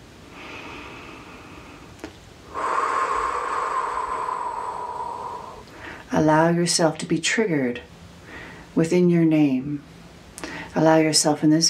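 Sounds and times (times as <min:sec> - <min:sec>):
deep breath during a guided meditation: 0:00.2 - 0:06.1, 0:08.2 - 0:08.7
speech: 0:06.1 - 0:07.9, 0:08.8 - 0:09.9, 0:10.8 - 0:11.6.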